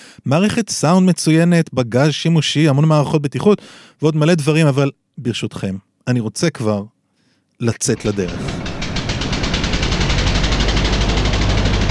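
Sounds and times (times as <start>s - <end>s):
speech: 0.2s - 7.0s, 7.6s - 8.6s
twin-turbocharged V6 car engine roaring: 8.3s - 11.8s.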